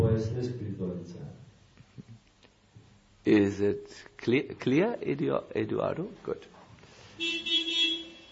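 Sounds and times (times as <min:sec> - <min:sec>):
speech: 0:00.2 - 0:01.4, 0:03.3 - 0:06.6
car horn honking: 0:07.2 - 0:08.2.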